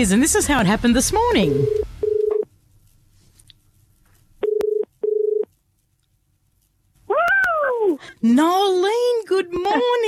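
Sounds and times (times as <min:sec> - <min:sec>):
speech: 0:00.0 - 0:01.9, 0:08.2 - 0:09.9
telephone ringing tone: 0:01.4 - 0:02.4, 0:04.4 - 0:05.5.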